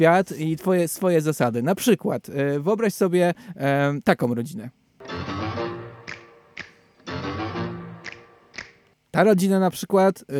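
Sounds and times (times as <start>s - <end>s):
speech: 0.0s - 4.8s, 9.2s - 10.3s
fingers snapping in a rhythmic pattern: 6.0s - 6.9s, 8.0s - 8.9s.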